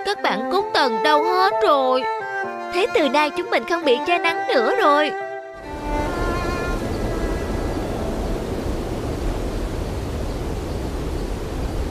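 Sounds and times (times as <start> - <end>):
speech: 0.1 - 5.2
wind blowing: 5.6 - 11.9.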